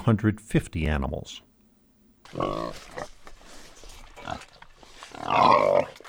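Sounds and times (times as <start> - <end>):
speech: 0.0 - 1.5, 2.3 - 3.2, 4.2 - 4.5, 5.2 - 6.0
pig squealing grunt: 2.3 - 3.3, 4.0 - 6.0
pigs grunting at snack time at an animal sanctuary: 2.3 - 6.0.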